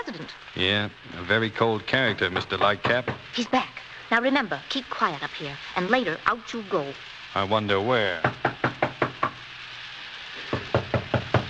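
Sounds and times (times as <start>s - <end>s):
speech: 0.2s - 8.5s
knocking on a locked door: 2.1s - 3.3s, 8.2s - 9.4s, 10.5s - 11.4s.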